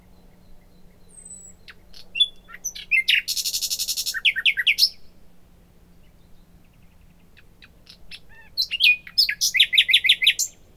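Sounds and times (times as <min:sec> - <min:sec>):
Luscinia megarhynchos singing: 0:00.3 - 0:05.0, 0:07.4 - 0:10.7.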